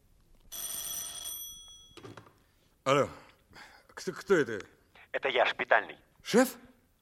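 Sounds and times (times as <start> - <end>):
telephone bell ringing: 0.5 - 2.2
speech: 2.9 - 3.2, 4.0 - 6.9.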